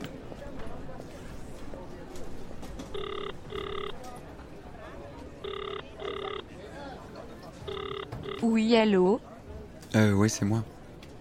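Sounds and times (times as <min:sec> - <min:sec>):
steady murmur of noise at an airport: 0:00.0 - 0:11.1
telephone ringing tone on the line from an airport call: 0:02.9 - 0:04.0, 0:05.4 - 0:06.5, 0:07.6 - 0:08.7
speech: 0:08.5 - 0:09.3, 0:09.9 - 0:10.7.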